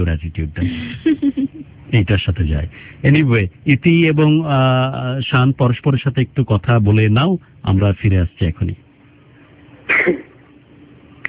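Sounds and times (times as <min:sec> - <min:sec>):
speech: 0:00.0 - 0:08.8, 0:09.9 - 0:10.3
hiss: 0:00.0 - 0:11.2
person coughing: 0:09.9 - 0:10.3.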